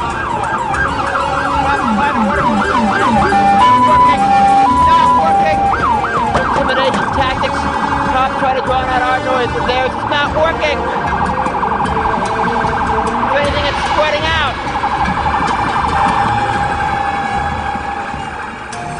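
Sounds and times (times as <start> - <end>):
loud electronic fire alarm wailing and warbling: 0.0 - 18.9
scattered voices: 0.0 - 18.9
steady clamor of street noise: 0.0 - 18.9.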